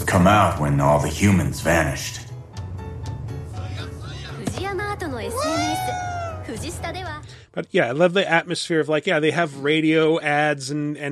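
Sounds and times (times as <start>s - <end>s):
speech: 0.2s - 2.2s, 7.6s - 11.1s
video game cat meowing: 5.3s - 6.5s.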